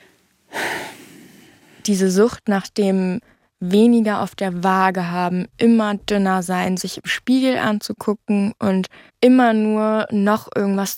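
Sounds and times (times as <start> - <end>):
deep airy breath of a 21-year-old woman: 0.0 - 1.8
speech: 1.8 - 10.9.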